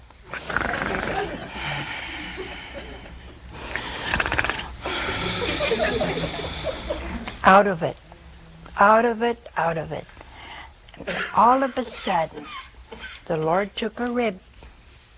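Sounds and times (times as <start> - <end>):
person mimicking a man snoring in deep sleep with their voice: 0.3 - 1.9, 4.0 - 5.4
laughter: 0.9 - 3.4, 4.9 - 7.3
speech: 7.5 - 8.0, 8.8 - 10.1, 11.0 - 12.4, 13.3 - 14.5.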